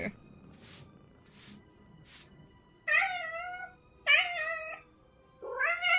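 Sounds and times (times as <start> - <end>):
cat meowing: 2.9 - 4.8, 5.4 - 5.9.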